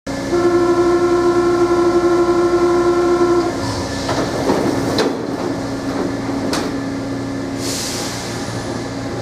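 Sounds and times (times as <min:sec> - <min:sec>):
doors of a Paris Métro line 3 train closing: 0:00.2 - 0:09.2
door warning signal of a Paris Métro line 3 train: 0:00.3 - 0:03.6.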